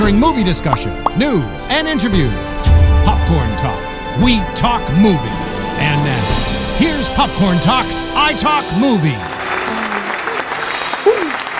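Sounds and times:
speech: 0.1s - 9.4s
audience applause on a movie talk show: 8.7s - 11.5s.

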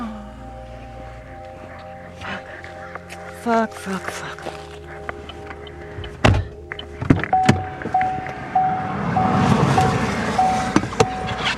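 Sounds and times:
faint repeating high tone: 0.0s - 11.4s
speech: 3.4s - 4.7s
sharp thumps: 5.2s - 8.5s
car driving by on a road: 6.0s - 11.5s.

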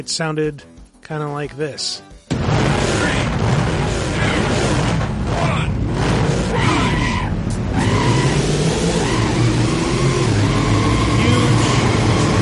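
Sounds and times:
speech: 0.0s - 3.2s
racing video game car engine roar while accelerating: 2.9s - 12.4s.

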